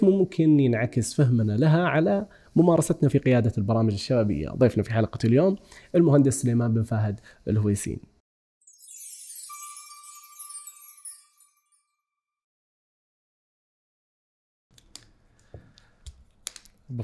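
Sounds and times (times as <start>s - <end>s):
speech: 0.0s - 8.1s, 16.9s - 17.0s
bright shimmering chime-like sweep: 8.6s - 12.1s.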